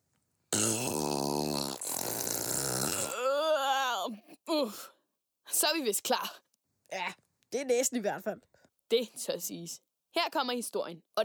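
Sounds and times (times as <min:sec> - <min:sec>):
person blowing nose loudly: 0:00.6 - 0:03.1
speech: 0:04.6 - 0:04.9, 0:05.5 - 0:11.2.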